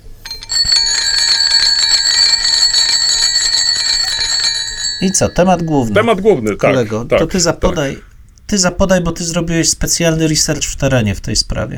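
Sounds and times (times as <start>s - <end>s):
bell ringing: 0.0s - 6.5s
speech: 5.0s - 11.7s.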